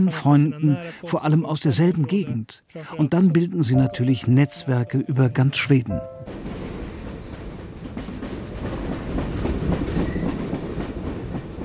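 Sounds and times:
speech: 0.0 - 6.5
train rolling on rails: 6.2 - 11.6.

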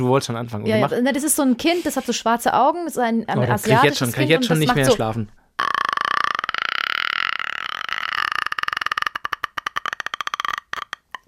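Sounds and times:
speech: 0.0 - 5.4
voice imitating a ghostly horror-film croak: 5.6 - 11.2.

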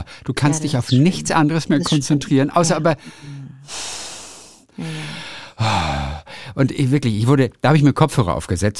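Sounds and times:
speech: 0.0 - 3.8, 6.6 - 8.7
voice imitating loud heavy breathing: 2.6 - 6.6.

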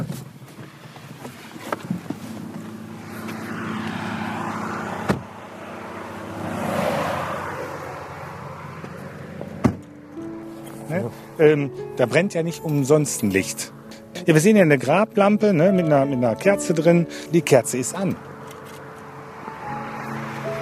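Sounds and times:
car speeding past: 2.2 - 11.4, 18.0 - 20.5
speech: 10.9 - 18.3.

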